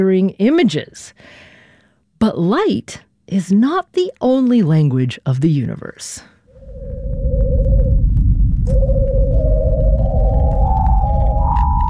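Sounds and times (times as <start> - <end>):
speech: 0.0 - 1.5, 2.2 - 7.0
eerie whistling tone from Venus upper atmosphere radio emission converted to sound: 6.5 - 11.8
low rumble from Venus upper atmosphere radio emission converted to sound: 6.5 - 11.8.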